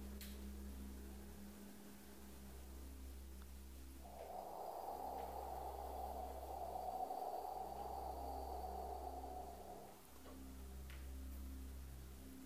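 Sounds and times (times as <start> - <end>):
low hum: 0.0 - 12.4
long slow exhale through the mouth during a breathing exercise: 4.0 - 10.5.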